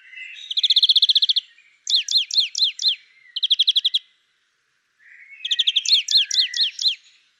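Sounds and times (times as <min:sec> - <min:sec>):
European greenfinch Chloris chloris trills and wheezy notes: 0:00.1 - 0:04.1, 0:05.3 - 0:07.1.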